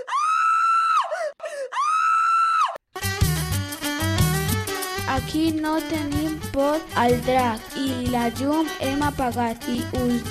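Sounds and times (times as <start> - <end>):
person screaming: 0.0 - 2.8
upbeat music: 3.0 - 10.2
speech: 5.2 - 10.2.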